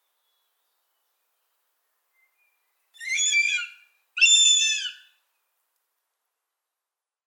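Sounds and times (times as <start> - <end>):
young northern goshawk calling, fledged but not yet flying: 3.0 - 5.1.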